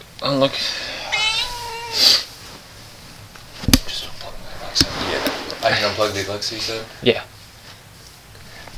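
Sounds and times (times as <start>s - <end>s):
speech: 0.3s - 0.9s, 5.7s - 7.4s
cat meowing: 1.0s - 2.2s
sudden thump: 3.6s - 5.6s.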